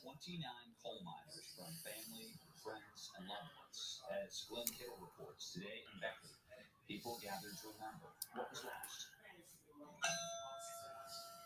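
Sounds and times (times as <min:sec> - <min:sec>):
faint low murmur: 0:00.0 - 0:11.4
speech: 0:00.0 - 0:11.4
memorial bell tolling for coal miners killed in a mine disaster: 0:10.0 - 0:11.4.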